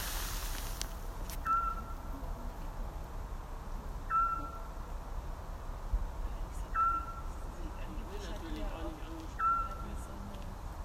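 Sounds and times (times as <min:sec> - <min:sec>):
steady background noise: 0:00.0 - 0:10.8
Eurasian scops owl whistling: 0:01.4 - 0:01.9, 0:04.1 - 0:04.7, 0:06.8 - 0:07.2, 0:09.4 - 0:09.8.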